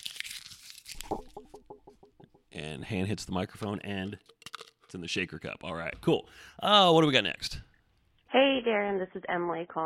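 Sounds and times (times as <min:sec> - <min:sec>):
paper being crumpled: 0:00.0 - 0:01.5
speech: 0:02.6 - 0:07.7, 0:08.3 - 0:09.8.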